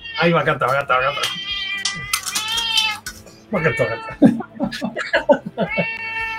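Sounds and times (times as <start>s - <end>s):
cat meowing: 0.0s - 4.3s, 5.6s - 6.3s
people chatting: 0.2s - 1.4s, 3.5s - 5.4s
speech: 0.2s - 1.5s, 3.5s - 6.0s
laughter: 3.6s - 6.2s.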